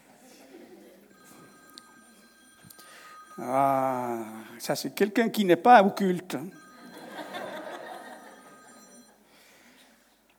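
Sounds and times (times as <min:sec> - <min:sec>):
laughter: 0:00.0 - 0:01.1, 0:06.8 - 0:09.1
mobile phone electronic ringtone: 0:01.1 - 0:04.6, 0:06.5 - 0:09.5
speech: 0:03.4 - 0:06.6.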